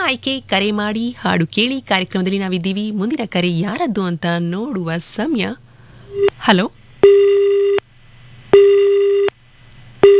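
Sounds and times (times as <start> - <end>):
speech: 0.1 - 7.2
telephone busy tone after a phone-in caller's line drops: 7.0 - 7.8, 8.6 - 9.3.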